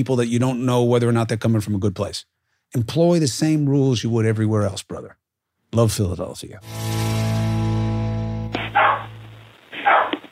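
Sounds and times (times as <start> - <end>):
speech: 0.0 - 7.3
spaniel barking: 8.6 - 9.1, 9.8 - 10.3.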